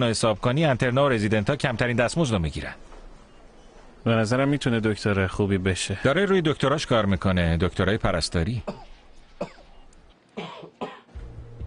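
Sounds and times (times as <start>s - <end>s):
speech: 0.0s - 2.9s, 4.0s - 9.6s
person coughing: 8.6s - 9.8s, 10.4s - 11.1s.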